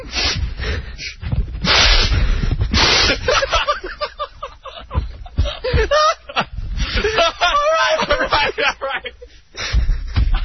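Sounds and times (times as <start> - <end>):
person sniffing loudly through the nose to smell something: 0.0 - 3.4
people chuckling: 3.0 - 10.4.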